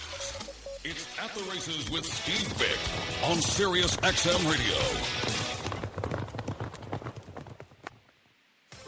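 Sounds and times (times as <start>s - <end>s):
speech: 0.9s - 5.4s
many horse hooves galloping: 1.6s - 8.3s.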